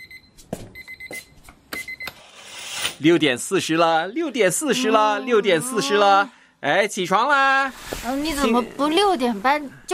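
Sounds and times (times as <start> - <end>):
alarm clock beeping in high-pitched electronic bursts: 0.0 - 2.4
speech: 3.0 - 9.9
person speaking loudly: 4.1 - 6.3.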